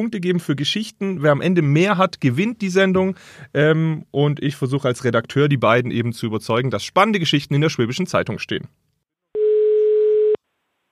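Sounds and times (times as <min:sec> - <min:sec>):
speech: 0:00.0 - 0:08.8
telephone ringing tone of a call from Ravensburg to Oldenburg: 0:09.4 - 0:10.4.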